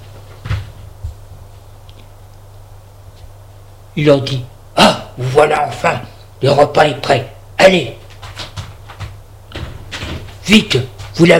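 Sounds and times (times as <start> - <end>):
low steady hum: 0.0 - 11.3
speech: 4.0 - 8.0, 10.5 - 11.3
apartment door opening with a solid wooden thud: 8.3 - 10.4.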